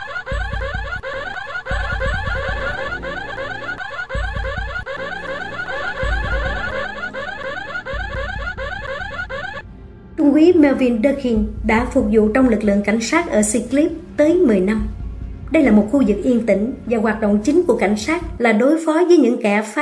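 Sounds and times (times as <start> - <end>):
alarm bell ringing: 0.0 - 9.6
low rumbling bursts: 9.6 - 18.4
speech: 10.4 - 19.8.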